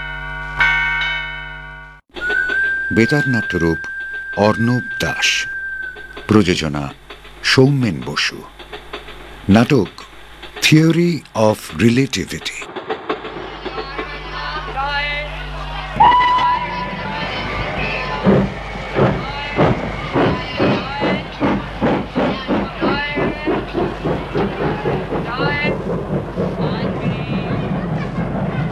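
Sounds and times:
train wheels clacking: 2.1s - 28.7s
train whistle at a station: 2.2s - 6.6s, 16.0s - 21.2s
speech: 2.9s - 5.5s, 6.3s - 8.6s, 9.5s - 10.1s, 10.7s - 12.6s.

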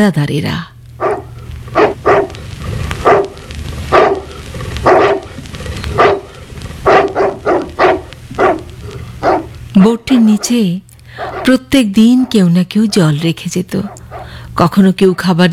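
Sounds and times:
speech: 0.0s - 1.1s, 9.8s - 14.0s, 14.6s - 15.5s
small dog barking: 1.0s - 2.4s, 3.0s - 5.4s, 6.0s - 13.0s.

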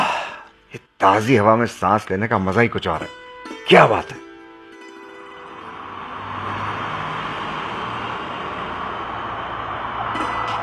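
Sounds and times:
speech: 1.0s - 4.2s
convoy of luxury cars and media vehicles driving past: 4.7s - 10.6s.

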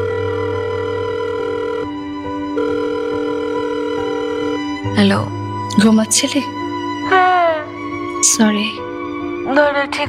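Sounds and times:
telephone ringing: 0.0s - 4.9s
speech: 5.0s - 6.6s, 8.2s - 8.8s, 9.5s - 10.0s.

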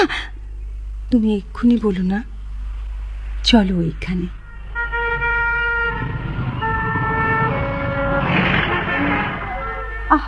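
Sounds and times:
speech: 1.1s - 2.4s, 3.4s - 4.4s
heavy traffic of many cars passing at a busy city crossing: 2.9s - 10.2s
sustained tonal horn or siren blasts: 4.4s - 10.2s.

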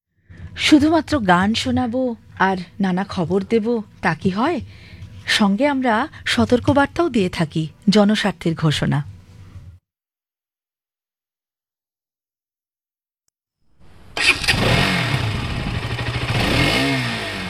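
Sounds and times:
speech: 0.6s - 9.1s
motorcycle engine revving: 13.8s - 17.4s.

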